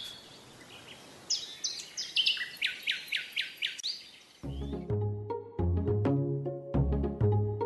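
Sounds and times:
songbirds chirping: 0.0 - 5.4
mellow instrumental music with sustained tones: 4.4 - 7.6.

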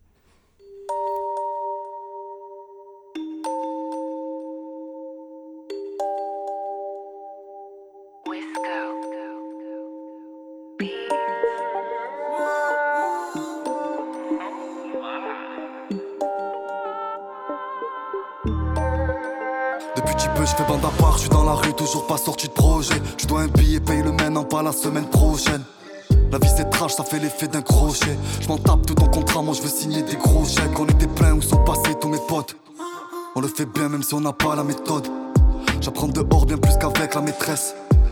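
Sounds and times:
slow bell-like synth notes in a rap track intro: 0.6 - 32.6, 33.4 - 38.1
speech: 20.5 - 32.7, 33.4 - 37.8
deep bass hits: 20.8 - 21.6, 22.6 - 24.2, 26.1 - 26.8, 28.0 - 29.3, 30.3 - 31.8, 35.7 - 37.0
fuller beat with drums: 21.0 - 21.7, 22.6 - 23.0, 23.6 - 23.9, 25.2 - 26.8, 27.7 - 28.1, 28.7 - 29.4, 30.3 - 31.9, 35.4 - 35.7, 36.3 - 37.1, 37.9 - 38.1.

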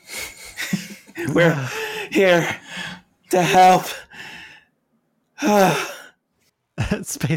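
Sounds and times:
voice imitating heavy panting: 0.0 - 4.2
speech: 1.2 - 2.7, 3.3 - 4.0, 5.4 - 5.9, 6.9 - 7.3.

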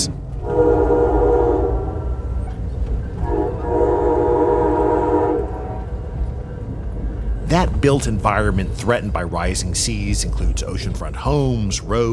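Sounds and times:
speech: 0.0 - 0.7, 7.8 - 12.1
passenger train horn blasts: 0.0 - 2.4, 3.2 - 6.0
passenger train rumbling along the rails: 0.0 - 12.1.

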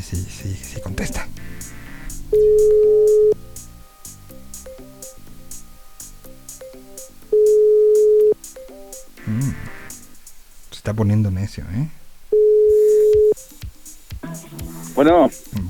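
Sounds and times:
speech: 0.0 - 1.5, 10.9 - 12.0, 15.0 - 15.6
quiet music: 0.0 - 15.6
telephone call ringing tone: 1.4 - 10.1, 12.3 - 13.4.

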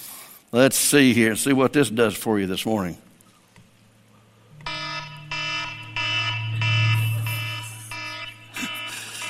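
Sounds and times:
speech: 0.5 - 3.1
low hum: 4.0 - 8.8
alarm clock ringing: 4.6 - 9.2.

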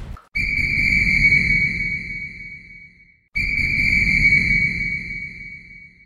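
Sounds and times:
whistle blown in long loud blasts: 0.4 - 6.0.

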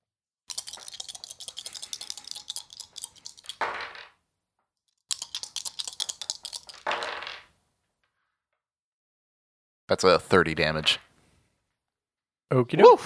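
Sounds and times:
handful of dice rattling and clattering: 0.5 - 4.1, 5.1 - 7.5
speech: 9.9 - 11.1, 12.5 - 13.0.

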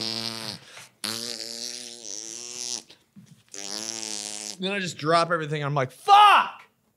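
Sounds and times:
buzzy fart: 0.0 - 4.7
speech: 4.6 - 6.6.

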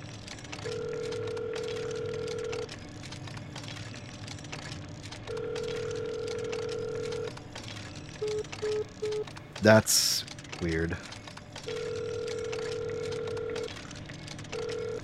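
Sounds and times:
low hum: 0.0 - 15.0
telephone call tones while placing a phone call: 0.6 - 2.7, 5.3 - 7.4, 8.2 - 9.3, 11.6 - 13.8, 14.5 - 15.0
speech: 9.6 - 11.1.

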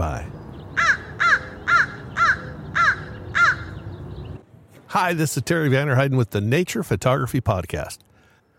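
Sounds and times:
crow cawing in trees: 0.8 - 3.8
speech: 4.9 - 8.1.

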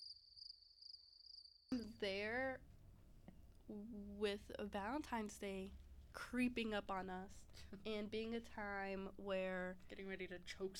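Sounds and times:
crickets chirping in a high-pitched trill: 0.0 - 1.7
speech: 1.7 - 2.7, 3.7 - 10.7.

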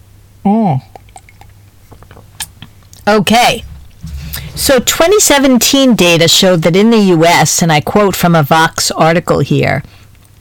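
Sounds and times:
speech: 0.4 - 1.0, 3.1 - 3.7, 4.6 - 10.0
person humming: 0.4 - 1.1
sipping and swallowing a drink: 0.8 - 3.0.

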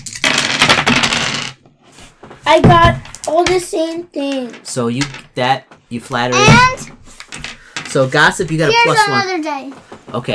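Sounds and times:
dice rolling on a hard table: 0.0 - 5.4, 6.5 - 8.8
speech: 2.5 - 7.0, 7.9 - 10.3.

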